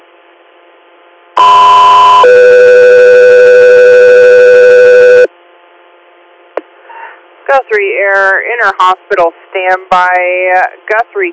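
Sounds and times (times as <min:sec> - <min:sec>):
two dispatch paging alert tones: 0:01.4 - 0:05.3
faint radio hiss: 0:01.7 - 0:11.3
speech: 0:07.7 - 0:11.3.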